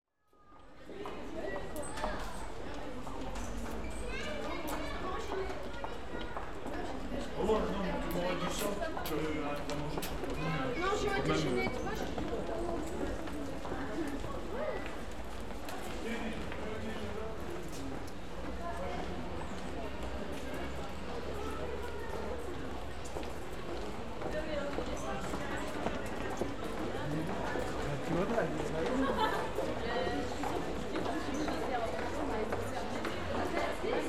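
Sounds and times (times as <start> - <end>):
pedestrian precinct ambience in France: 0.2 - 34.0.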